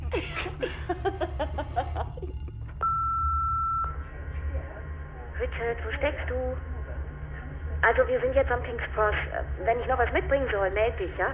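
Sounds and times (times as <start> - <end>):
laughter: 0.0 - 2.8
voices: 0.0 - 11.3
answering machine high-pitched electronic beep: 2.8 - 4.0
speech: 7.9 - 11.3.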